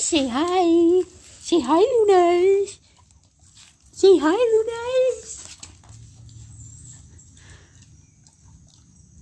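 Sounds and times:
speech: 0.1s - 2.8s, 4.0s - 5.4s
dog chewing on a stick: 2.4s - 9.2s.

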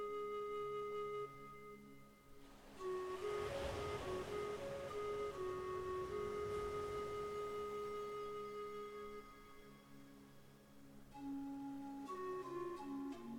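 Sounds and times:
calm sustained musical tones: 0.0s - 13.3s
soft surf washing onto a sandy shore: 2.3s - 9.2s.

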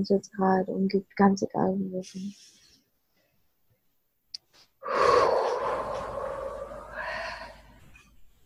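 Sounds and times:
speech: 0.0s - 2.6s
deep breath in during a relaxation exercise: 4.8s - 8.0s.

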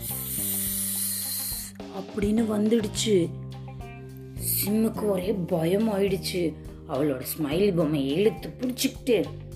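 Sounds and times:
snake hissing: 0.0s - 1.9s
speech: 2.0s - 3.4s, 4.6s - 9.4s.

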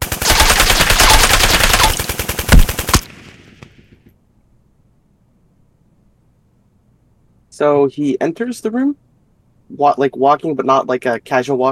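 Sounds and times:
automatic weapon gunfire spraying bullets: 0.0s - 3.4s
speech: 7.6s - 9.1s, 9.7s - 11.6s.

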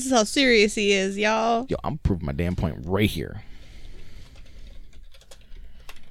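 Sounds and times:
speech: 0.0s - 3.5s
angry typing on a computer keyboard: 4.2s - 6.0s.

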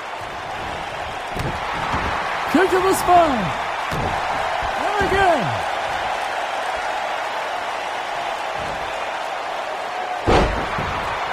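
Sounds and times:
crowd roar at a pro wrestling match: 0.0s - 11.3s
speech: 2.5s - 4.2s, 5.0s - 5.8s
wrestler slammed onto the ring mat in a pro wrestling match: 10.2s - 11.1s.

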